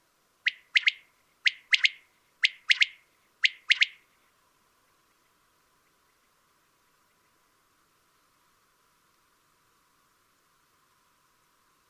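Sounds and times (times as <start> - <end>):
common quail calling a three-note phrase: 0.5 - 4.0.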